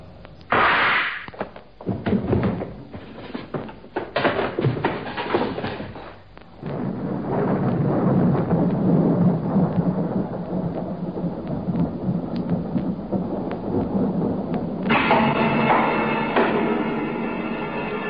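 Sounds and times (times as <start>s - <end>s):
thunder crack: 0.0s - 18.0s
rain-like wash: 6.0s - 18.0s.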